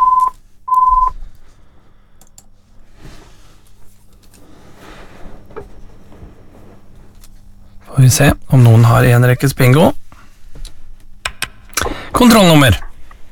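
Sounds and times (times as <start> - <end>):
telephone ringing with electronic tones during a bingo game: 0.0 - 1.2
speech: 8.0 - 10.0, 12.2 - 12.9.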